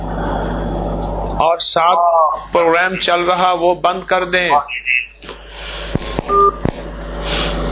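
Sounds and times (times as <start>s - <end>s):
brief electronic keypad or line beep: 0.0s - 3.6s, 6.0s - 6.7s
steady low telephone line hiss: 0.0s - 3.7s, 4.5s - 7.6s
speech: 1.6s - 5.4s.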